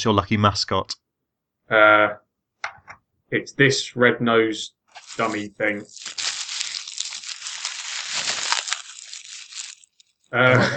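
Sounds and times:
speech: 0.0s - 1.0s, 1.7s - 2.2s, 3.3s - 6.2s, 10.3s - 10.7s
bubble wrap being crumpled in front of a microphone: 4.9s - 10.7s.

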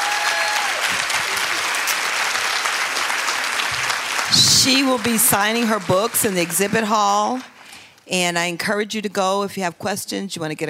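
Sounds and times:
large audience of ladies applauding a speaker: 0.0s - 7.8s
speech: 4.3s - 7.5s, 8.1s - 10.6s.

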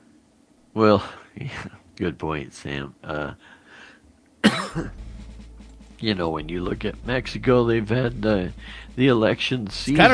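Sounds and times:
low noise: 0.0s - 10.1s
speech: 0.8s - 3.6s, 4.5s - 5.0s, 6.0s - 10.1s
harsh cough: 4.4s - 5.0s.

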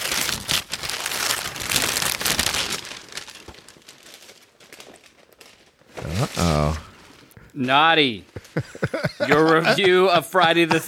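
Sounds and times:
wrapping paper crinkling and tearing as a Christmas gift is unwrapped: 0.0s - 7.3s
speech: 7.6s - 10.8s
laughter: 8.3s - 10.8s.

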